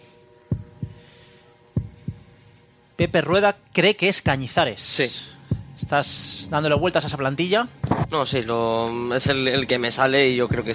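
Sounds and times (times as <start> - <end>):
faint steady hum: 0.0 - 10.7
heartbeat sound effect with deep lub-dub double thumps: 0.5 - 1.1, 1.8 - 2.4, 3.0 - 3.5, 4.3 - 10.7
speech: 3.0 - 10.7.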